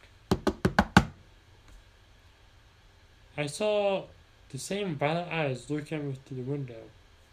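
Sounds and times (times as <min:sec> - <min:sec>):
firm knocks on a library door: 0:00.3 - 0:01.2
speech: 0:03.4 - 0:07.0.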